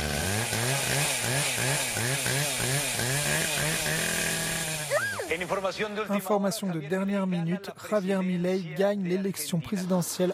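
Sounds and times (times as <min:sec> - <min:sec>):
chainsaw engine revving: 0:00.0 - 0:05.8
speech: 0:05.3 - 0:10.3.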